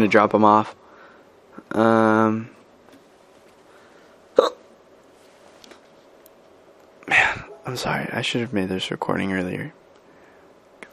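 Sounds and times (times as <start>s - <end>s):
speech: 0.0s - 0.8s, 1.6s - 2.6s, 7.1s - 9.8s
person hiccuping: 4.4s - 4.7s.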